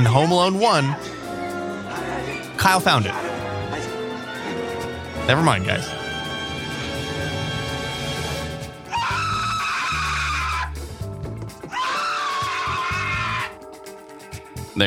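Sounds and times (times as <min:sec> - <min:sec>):
speech: 0:00.0 - 0:01.2, 0:02.6 - 0:03.4, 0:05.3 - 0:06.0
film soundtrack music: 0:00.0 - 0:14.8
man screaming in a film scene: 0:08.9 - 0:10.8, 0:11.7 - 0:13.6.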